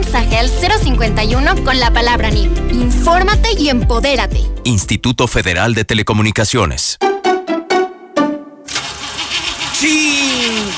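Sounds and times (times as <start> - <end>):
speech: 0.2 - 7.1
old car engine cranking and running with a wavering whine: 8.7 - 10.7.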